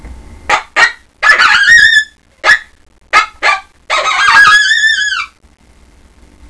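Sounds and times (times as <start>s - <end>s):
coyote howling: 1.2s - 2.2s, 3.9s - 5.4s.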